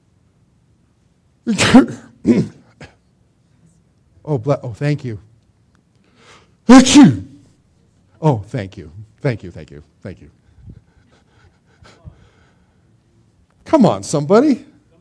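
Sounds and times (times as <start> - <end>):
speech: 1.5 - 2.5, 4.3 - 5.3, 6.7 - 7.3, 8.2 - 10.4, 13.7 - 14.7
person sneezing: 1.5 - 3.0, 6.7 - 7.4.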